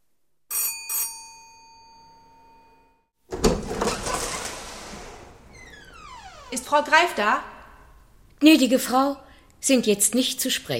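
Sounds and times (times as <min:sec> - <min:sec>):
doorbell ringing: 0:00.5 - 0:03.0
burst of rustling door-like noise: 0:03.3 - 0:06.8
speech: 0:06.5 - 0:07.5, 0:08.4 - 0:10.7.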